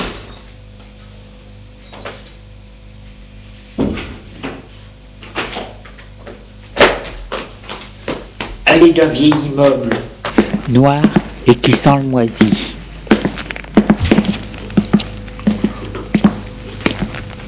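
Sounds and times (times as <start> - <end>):
speech: 8.7 - 10.1, 10.7 - 12.7
low steady hum: 10.1 - 17.4
door kicked open: 13.9 - 14.6.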